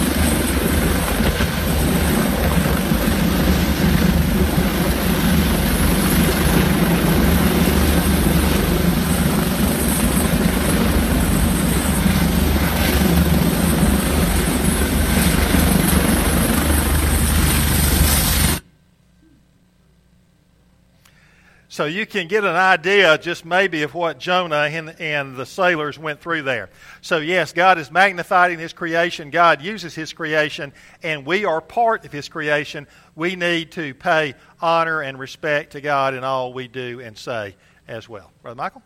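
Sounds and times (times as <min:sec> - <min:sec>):
helicopter rotor thumping and engine whining: 0:00.0 - 0:18.6
speech: 0:21.8 - 0:38.8.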